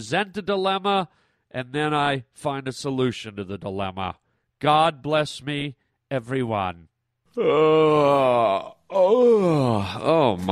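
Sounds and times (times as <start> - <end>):
speech: 0.0 - 10.5
long drawn-out human yawn with groan-like voice: 7.3 - 10.5.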